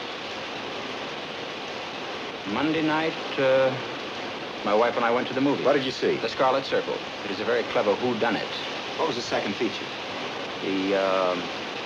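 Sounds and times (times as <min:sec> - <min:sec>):
rain falling: 0:00.0 - 0:11.8
speech: 0:02.4 - 0:03.9, 0:04.6 - 0:10.0, 0:10.6 - 0:11.6.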